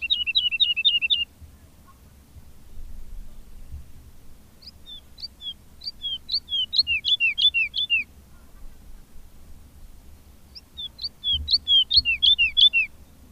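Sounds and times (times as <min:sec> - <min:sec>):
woodlark singing: 0:00.0 - 0:01.9, 0:04.6 - 0:09.2, 0:10.4 - 0:13.2.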